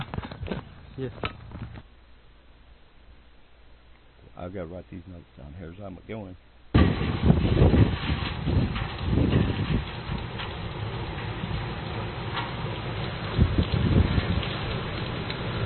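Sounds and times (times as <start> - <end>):
speech: 1.0 - 1.4, 4.4 - 9.8
rain falling: 6.8 - 15.6.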